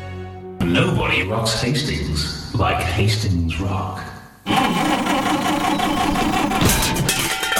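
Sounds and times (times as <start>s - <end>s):
speech: 0.7s - 7.1s
car engine sputtering as it struggles to start: 4.5s - 7.5s.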